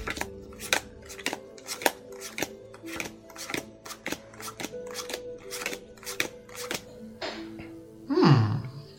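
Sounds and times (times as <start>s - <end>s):
tarot cards being shuffled by a tarot reader: 0.0s - 6.9s.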